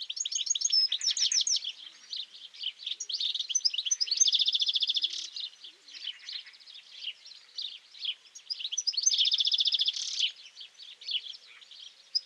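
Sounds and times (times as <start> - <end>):
European goldfinch Carduelis carduelis singing: 0.0 - 12.2.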